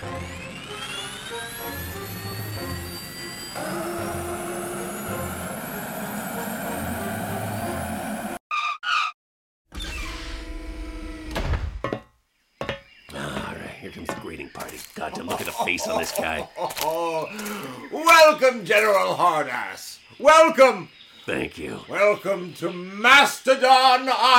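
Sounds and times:
jet engine roar of a helicarrier aircraft landing: 0.0 - 8.4
speech: 13.9 - 24.3
laughter: 14.6 - 17.8.

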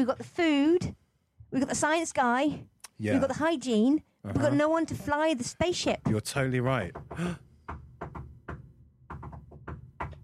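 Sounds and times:
speech: 0.0 - 7.8
knocking on a door or hard surface in Morse code: 4.3 - 10.2.

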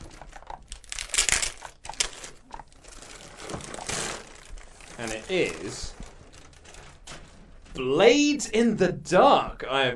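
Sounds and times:
gift wrapping paper crinkling and tearing as a present is opened: 0.0 - 7.1
speech: 5.0 - 6.0, 7.8 - 9.9.

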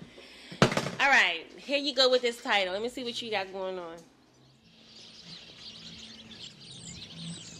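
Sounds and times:
speech: 1.0 - 4.1
low hum of city traffic: 1.2 - 7.5
many small birds chirping and twittering in a street tree: 4.2 - 7.5.

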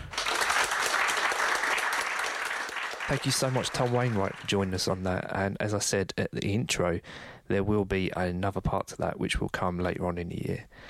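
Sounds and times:
audience applause for a guest speaker after a talk: 0.0 - 5.1
speech: 3.1 - 10.8.

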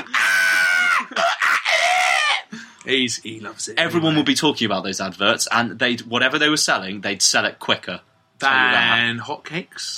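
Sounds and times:
person imitating a screaming monkey: 0.0 - 2.5
speech: 2.9 - 9.9.

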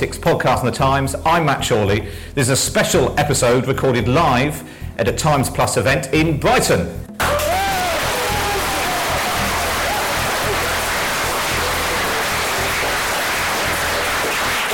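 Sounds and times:
speech: 0.0 - 7.1
live audience applauding: 7.2 - 14.7.

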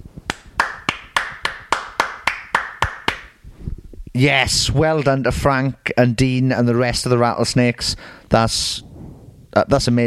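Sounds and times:
person clapping hands: 0.3 - 3.4
speech: 4.2 - 8.9, 9.6 - 10.0.

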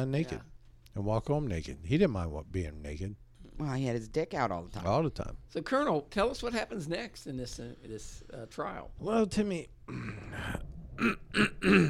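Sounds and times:
speech: 0.0 - 11.8
person clearing throat: 9.9 - 11.8.

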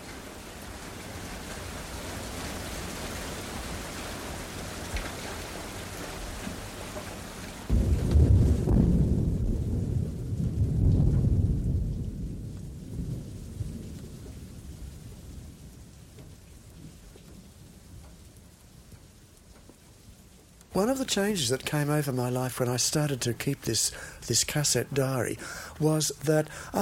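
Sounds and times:
steady rain: 0.0 - 26.8
thunder rumbling: 7.7 - 17.9, 23.6 - 26.8
speech: 20.8 - 26.8.

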